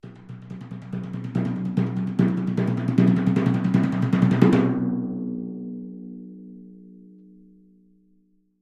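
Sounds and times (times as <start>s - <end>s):
timpani struck with mallets: 0.0s - 5.4s.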